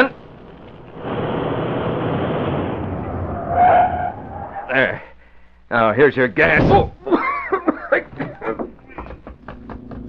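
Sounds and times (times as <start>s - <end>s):
car engine roaring: 0.4s - 4.8s
car tires screeching as it brakes to a halt: 1.0s - 5.0s
speech: 5.7s - 7.0s
laughter: 7.0s - 9.5s.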